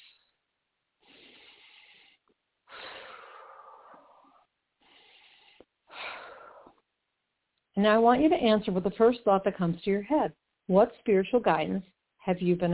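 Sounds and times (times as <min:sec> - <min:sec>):
deep slow breath drawn in through the nose: 0:00.0 - 0:00.3, 0:01.0 - 0:06.8
longer airy exhale through the mouth: 0:00.0 - 0:00.3, 0:01.0 - 0:06.4
speech: 0:07.8 - 0:12.7.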